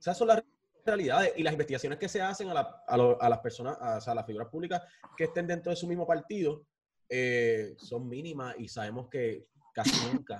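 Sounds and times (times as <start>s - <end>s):
speech: 0.0s - 10.3s
person sneezing: 9.8s - 10.2s.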